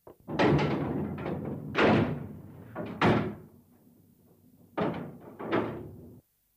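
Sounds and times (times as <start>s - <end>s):
door thudding as it is shut firmly: 0.3s - 3.5s, 4.8s - 6.0s.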